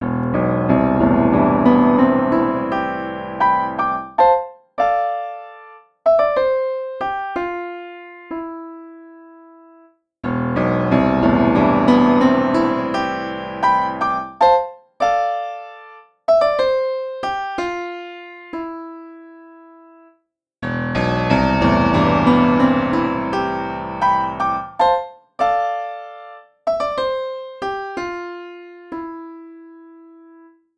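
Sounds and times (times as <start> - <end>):
upright piano played hard: 0.0 - 30.7.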